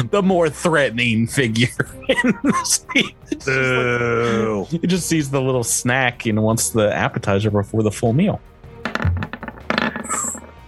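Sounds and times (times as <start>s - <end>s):
speech: 0.0s - 8.6s
laughter: 1.6s - 4.6s
dice clattering across a hard surface: 8.8s - 10.6s.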